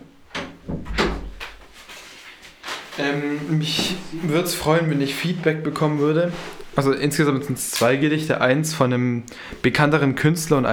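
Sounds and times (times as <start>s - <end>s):
door swinging shut with a soft thud: 0.3s - 1.6s
speech: 3.0s - 10.7s.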